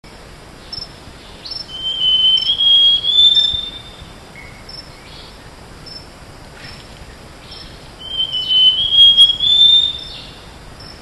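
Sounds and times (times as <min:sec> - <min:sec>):
steady background hiss: 0:00.0 - 0:11.0
bird whistling phrases in tropical Asia: 0:01.7 - 0:04.0, 0:08.0 - 0:10.2.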